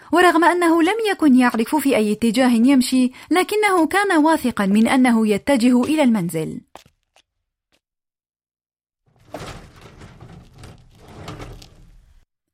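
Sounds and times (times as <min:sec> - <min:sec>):
speech: 0:00.1 - 0:06.9
house door scraping and rumbling open: 0:09.0 - 0:12.3.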